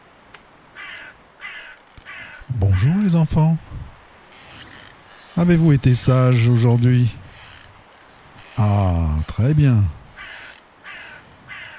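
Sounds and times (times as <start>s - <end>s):
crow cawing: 0.7s - 2.9s, 10.1s - 11.7s
speech: 2.6s - 3.7s, 5.4s - 7.2s, 8.6s - 10.0s.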